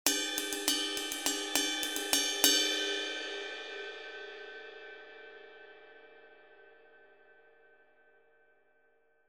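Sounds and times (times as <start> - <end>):
20-inch ride cymbal: 0.1 - 3.3.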